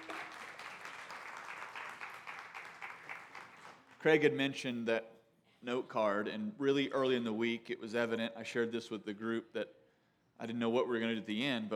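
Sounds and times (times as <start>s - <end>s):
crowd applauding: 0.0s - 4.0s
speech: 4.0s - 9.8s, 10.4s - 11.7s.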